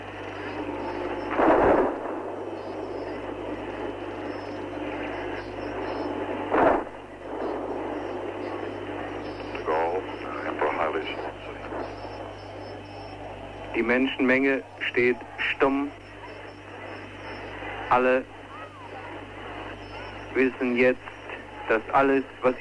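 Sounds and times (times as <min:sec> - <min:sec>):
faint crowd murmur: 0:00.0 - 0:22.6
steady hum: 0:00.0 - 0:22.6
cannon booms of a ceremonial artillery gun salute: 0:01.2 - 0:03.2, 0:06.4 - 0:08.3
speech: 0:13.8 - 0:16.0, 0:17.9 - 0:18.3, 0:20.4 - 0:21.1, 0:21.7 - 0:22.6.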